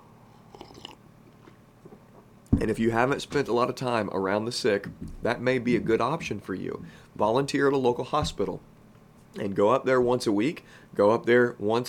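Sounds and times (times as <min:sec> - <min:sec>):
person sipping coffee: 0:00.2 - 0:02.3
wet slurping mouth noises: 0:00.3 - 0:02.3
speech: 0:02.5 - 0:08.7, 0:09.3 - 0:11.8.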